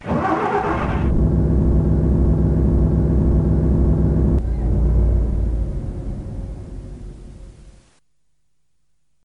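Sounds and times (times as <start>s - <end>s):
diesel engine idling: 0.0s - 7.2s.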